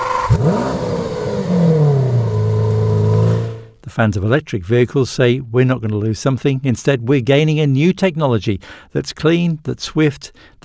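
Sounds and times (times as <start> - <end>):
petrol car engine revving: 0.0 - 3.8
speech: 4.0 - 10.6.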